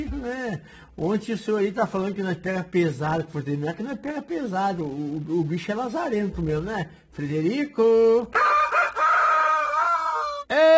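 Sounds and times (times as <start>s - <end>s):
speech: 0.0s - 8.5s, 10.5s - 10.7s
rooster crowing: 8.4s - 10.5s.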